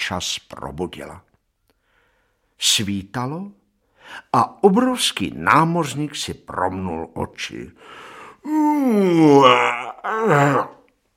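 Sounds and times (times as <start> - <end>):
speech: 0.1 - 1.3, 2.6 - 10.8
voice imitating a huge drawn-out yawn: 8.4 - 10.8.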